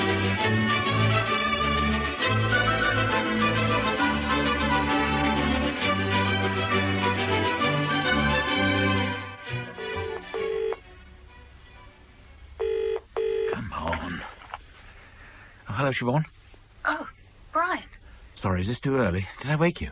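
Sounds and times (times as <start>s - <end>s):
music: 0.0s - 12.8s
telephone ringing through the line: 9.7s - 10.8s, 12.6s - 13.9s
telephone dialed with short tonal beeps: 9.8s - 10.8s
speech: 15.9s - 16.3s, 18.4s - 19.8s.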